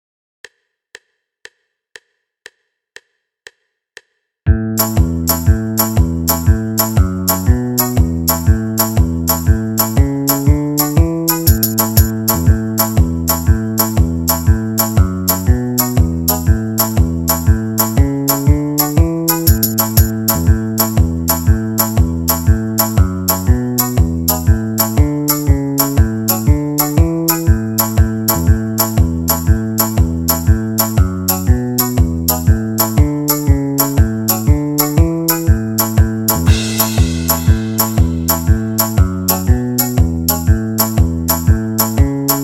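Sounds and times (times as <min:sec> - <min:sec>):
banjo backing track: 0:04.5 - 0:42.4.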